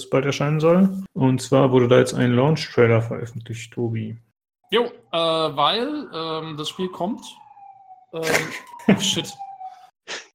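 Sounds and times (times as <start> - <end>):
speech: 0.0 - 7.4, 8.1 - 9.4
emergency vehicle siren wailing: 3.8 - 10.0
man laughing: 8.2 - 9.4.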